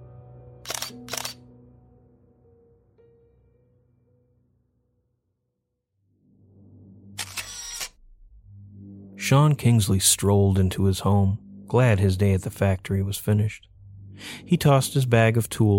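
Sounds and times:
camera shutter clicking: 0.6s - 1.4s, 7.2s - 7.9s
low hum: 5.8s - 15.7s
speech: 9.3s - 15.7s.

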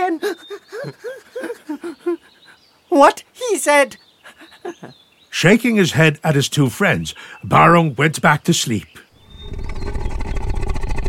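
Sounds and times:
laughter: 0.0s - 2.4s, 4.3s - 4.9s
speech: 3.0s - 4.0s, 5.4s - 9.0s
loud rough roaring snore: 9.3s - 11.0s.

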